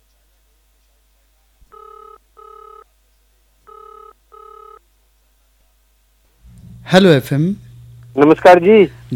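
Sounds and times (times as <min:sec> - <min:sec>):
telephone ringback tone on a radio call-in phone line: 0:01.7 - 0:02.9, 0:03.7 - 0:04.8
speech: 0:06.9 - 0:07.6, 0:08.2 - 0:09.1.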